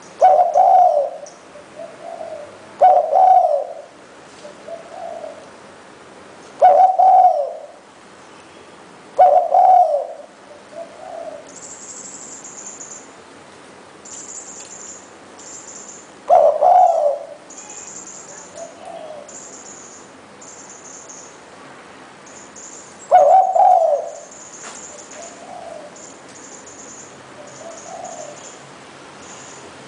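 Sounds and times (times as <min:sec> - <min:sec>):
spotted dove cooing: 0:00.0 - 0:05.5, 0:06.6 - 0:07.8, 0:09.2 - 0:11.5, 0:16.2 - 0:17.7, 0:18.3 - 0:19.3, 0:23.1 - 0:26.1, 0:27.3 - 0:28.6
thin high background sounds: 0:00.0 - 0:29.8.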